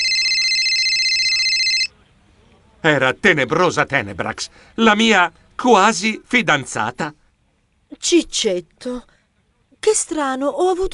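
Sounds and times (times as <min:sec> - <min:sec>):
mobile phone ringing: 0:00.0 - 0:01.9
speech: 0:02.8 - 0:07.2, 0:08.0 - 0:09.1, 0:09.8 - 0:10.9.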